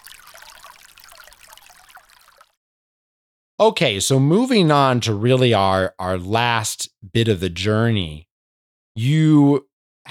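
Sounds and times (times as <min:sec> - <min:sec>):
sparkling spa water trickling from a crack in an altar stone in a small chapel: 0:00.0 - 0:02.6
speech: 0:03.6 - 0:08.3, 0:09.0 - 0:10.0.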